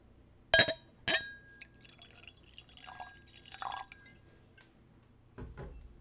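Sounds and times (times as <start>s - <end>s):
sharp ringing glass clinks: 0.6s - 4.2s
applejack poured into a nosing glass: 1.4s - 4.6s.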